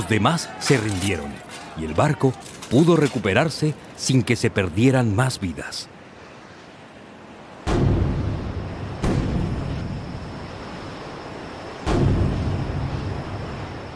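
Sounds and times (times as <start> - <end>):
speech: 0.0 - 6.0
steady wash of wind or surf: 0.0 - 13.9
booming cannon shots: 7.7 - 9.9, 11.8 - 12.6.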